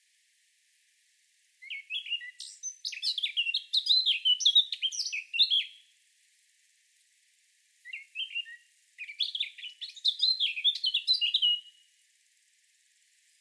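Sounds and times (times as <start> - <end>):
Eurasian blackcap Sylvia atricapilla song: 1.6 - 5.9, 7.8 - 11.8.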